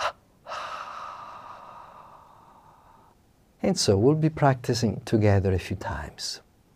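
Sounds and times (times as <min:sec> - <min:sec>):
held breath released in a double exhalation during a breathing exercise: 0:00.0 - 0:03.2
speech: 0:03.6 - 0:06.5.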